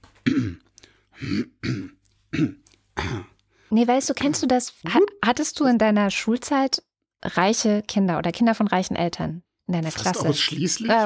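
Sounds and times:
person clearing throat: 0.2s - 3.4s
speech: 0.3s - 0.6s, 1.2s - 1.5s, 3.8s - 11.0s.

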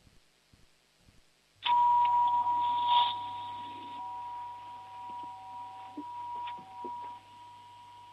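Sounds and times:
doorbell chime: 1.7s - 8.1s.

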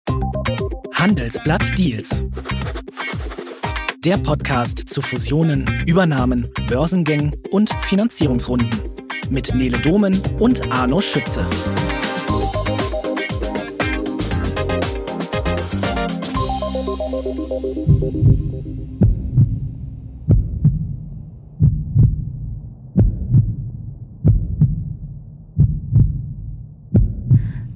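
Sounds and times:
music: 0.1s - 25.0s
speech: 1.0s - 2.9s, 4.0s - 12.1s, 17.3s - 18.8s
loud human heartbeat: 17.9s - 21.0s, 21.6s - 27.7s.

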